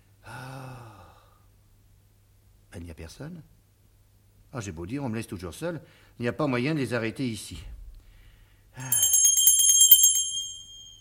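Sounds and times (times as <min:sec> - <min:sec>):
speech: 0:02.7 - 0:03.6, 0:04.5 - 0:07.8, 0:08.8 - 0:09.0
small hand bell ringing: 0:08.8 - 0:10.9.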